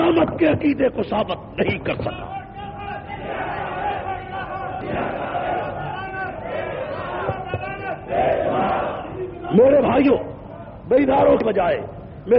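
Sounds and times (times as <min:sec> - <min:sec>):
speech: 0:00.2 - 0:02.4, 0:09.5 - 0:10.3, 0:10.9 - 0:12.3
large crowd chanting slogans in unison: 0:03.1 - 0:09.5.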